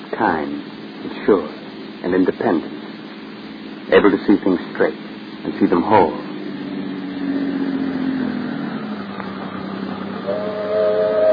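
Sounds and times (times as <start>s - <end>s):
steady rumble of steam train engine and rail noise: 0.0s - 11.3s
speech: 0.2s - 2.8s, 3.9s - 6.2s
steam train whistle: 10.2s - 11.3s.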